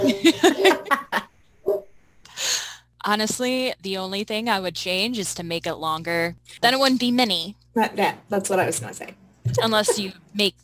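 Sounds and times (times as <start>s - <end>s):
speech: 0.0s - 0.7s, 3.1s - 10.6s
laughter: 0.0s - 1.3s
dogs barking: 1.6s - 1.9s.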